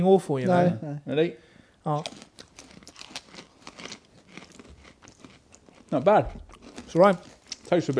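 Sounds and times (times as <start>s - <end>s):
speech: 0.0s - 2.3s, 5.9s - 7.9s
several people crunching freeze-dried ice cream cubes: 1.9s - 7.9s.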